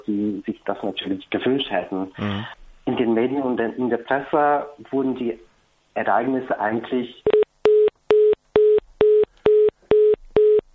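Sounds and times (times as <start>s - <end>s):
speech: 0.1s - 7.3s
telephone busy tone from a line fault: 7.3s - 10.7s.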